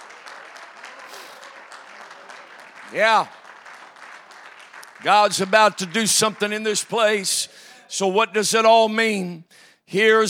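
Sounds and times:
congregation clapping hands during a church worship service: 0.0 - 7.4
speech: 2.9 - 3.4, 5.0 - 10.2.

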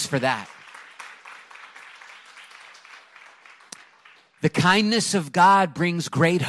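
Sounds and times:
church audience applauding: 0.0 - 4.8
speech: 0.1 - 0.6, 4.4 - 6.4.

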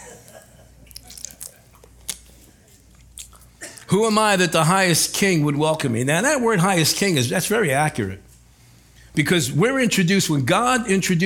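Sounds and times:
faint hum: 0.0 - 11.2
person sipping water: 0.8 - 3.9
small swallowing sounds: 0.8 - 3.9
speech: 3.9 - 8.2, 9.2 - 11.2.

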